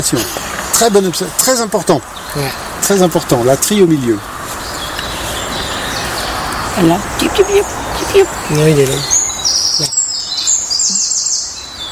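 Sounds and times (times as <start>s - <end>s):
speech: 0.0s - 4.4s, 6.8s - 9.9s
bird singing a high bright song ending in quick repeated calls: 4.6s - 11.9s.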